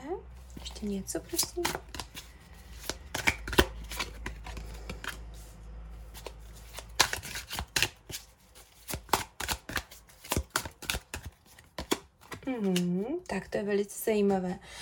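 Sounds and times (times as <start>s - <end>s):
oracle cards being shuffled: 0.4s - 13.1s
speech: 0.7s - 2.0s, 12.5s - 14.7s
oracle cards falling out: 1.3s - 5.2s, 6.2s - 12.8s.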